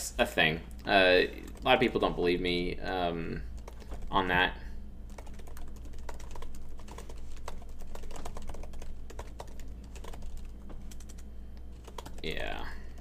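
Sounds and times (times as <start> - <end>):
steady low hum: 0.0 - 12.9
speech: 0.2 - 3.5, 4.1 - 4.6, 12.2 - 12.8
typing notes on a computer keyboard: 3.6 - 4.1, 5.1 - 11.2, 11.8 - 12.5.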